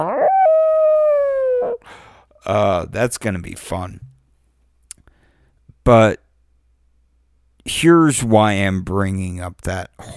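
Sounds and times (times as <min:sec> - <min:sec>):
wolf howling: 0:00.0 - 0:01.9
speech: 0:02.4 - 0:04.1, 0:05.8 - 0:06.2, 0:07.6 - 0:10.1.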